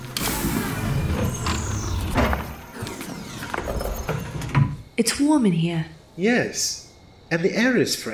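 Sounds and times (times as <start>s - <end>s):
mechanical door opening with motorized whirring whine: 0.0s - 4.9s
speech: 5.0s - 8.1s.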